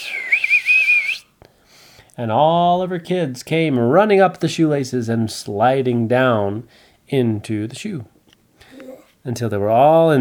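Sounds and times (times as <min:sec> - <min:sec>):
loud sustained human whistle: 0:00.0 - 0:01.3
speech: 0:02.2 - 0:08.2, 0:09.2 - 0:10.1.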